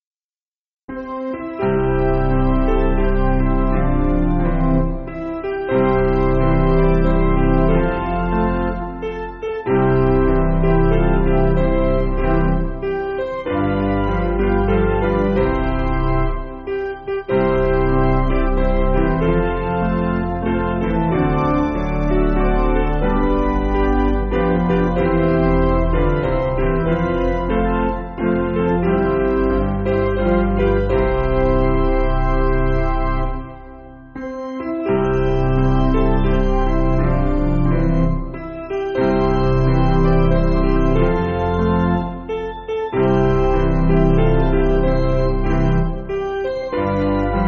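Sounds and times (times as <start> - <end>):
piano backing music for churches: 0.9 - 47.4.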